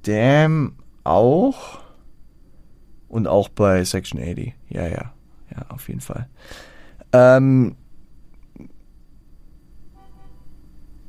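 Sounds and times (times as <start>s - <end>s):
speech: 0.0s - 1.8s, 3.1s - 7.8s, 8.6s - 8.8s
car horn honking outside: 9.9s - 10.6s.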